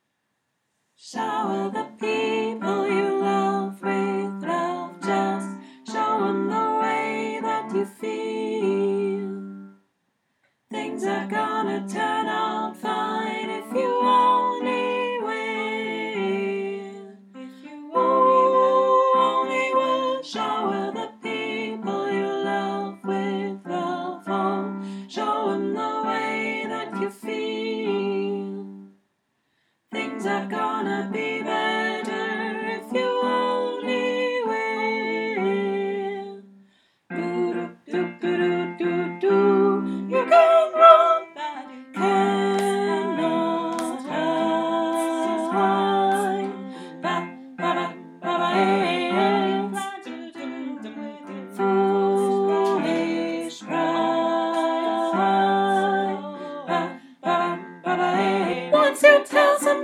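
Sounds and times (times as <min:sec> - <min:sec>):
tenor singing along: 0:01.0 - 0:09.7, 0:10.7 - 0:28.9, 0:29.9 - 0:59.8.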